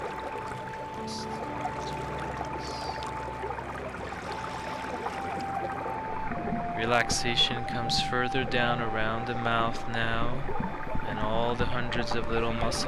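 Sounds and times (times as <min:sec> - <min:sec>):
waterfall pouring into a river: 0:00.0 - 0:07.4
faint sustained hum: 0:00.0 - 0:12.8
speech: 0:06.8 - 0:12.8.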